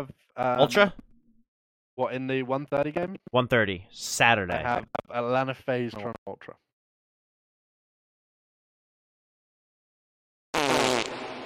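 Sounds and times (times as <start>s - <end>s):
speech: 0.0s - 1.0s, 2.0s - 6.6s
loud buzzy fart sound effect: 10.6s - 11.4s.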